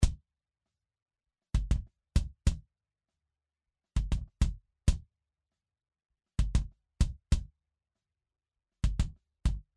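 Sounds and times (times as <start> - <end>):
kick drum: 1.6 - 2.6, 4.0 - 5.0, 6.4 - 7.5, 8.8 - 9.7.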